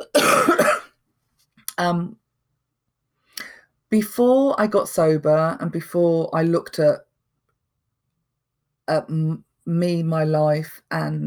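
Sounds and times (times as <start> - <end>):
person coughing harshly: 0.0 - 0.9
speech: 1.8 - 2.2, 3.9 - 7.0, 8.9 - 11.2.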